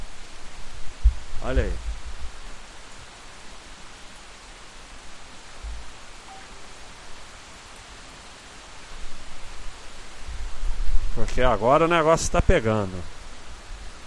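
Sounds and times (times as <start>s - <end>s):
heavy rain: 0.0s - 14.0s
speech: 1.4s - 1.9s, 11.2s - 13.2s.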